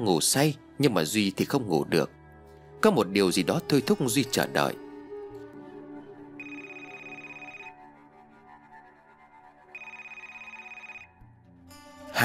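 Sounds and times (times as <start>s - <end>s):
speech: 0.0s - 2.2s, 2.8s - 4.8s
mobile phone ringing at night: 6.4s - 7.8s, 9.8s - 11.4s.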